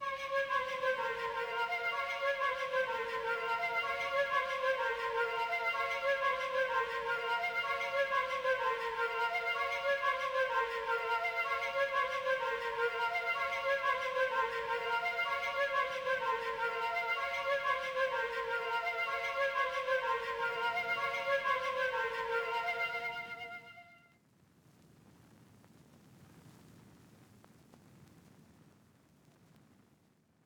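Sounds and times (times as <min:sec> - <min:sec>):
shakuhachi flute in A sharp minor: 0:00.0 - 0:24.1.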